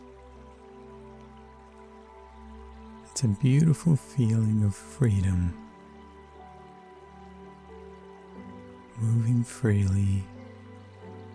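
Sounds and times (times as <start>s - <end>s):
river water flowing: 0.0s - 11.3s
speech: 3.2s - 5.6s, 9.0s - 10.3s.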